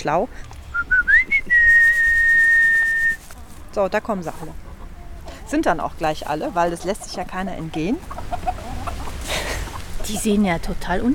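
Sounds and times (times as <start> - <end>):
speech: 0.0 - 0.6, 3.7 - 4.6, 5.5 - 8.2, 10.1 - 11.1
whistle calling a flock of trained chickens: 0.7 - 3.2.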